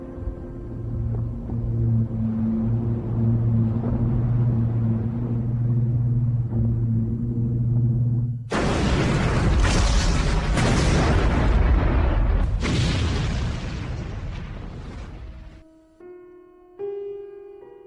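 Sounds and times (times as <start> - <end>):
quiet sustained musical tones: 0.0 - 8.5
massive ship explosion rumbling and reverberating: 8.5 - 15.6.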